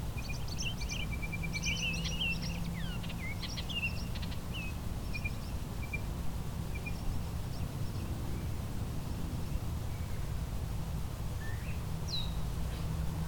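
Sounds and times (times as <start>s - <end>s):
blue-winged warbler singing outdoors: 0.2s - 6.1s, 6.7s - 8.6s, 11.4s - 13.2s
steady low rumble: 0.4s - 13.2s.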